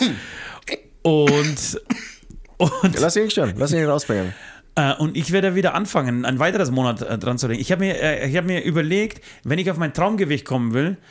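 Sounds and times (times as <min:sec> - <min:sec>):
speech: 0:01.0 - 0:11.0
man coughing and hacking: 0:01.2 - 0:04.3
throat-clearing rasps: 0:01.3 - 0:02.3.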